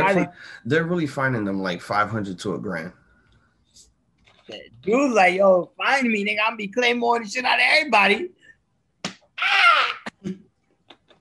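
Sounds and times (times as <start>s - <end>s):
speech: 0.1s - 3.0s, 4.5s - 8.4s
hand slapping a leg: 9.0s - 9.4s.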